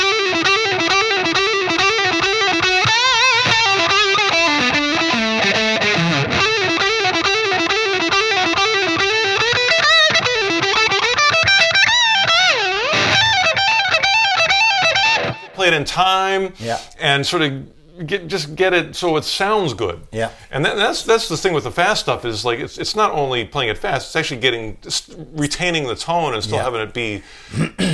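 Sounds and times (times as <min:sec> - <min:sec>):
heavily overdriven distorted electric guitar riff: 0:00.0 - 0:15.6
speech: 0:15.7 - 0:27.9.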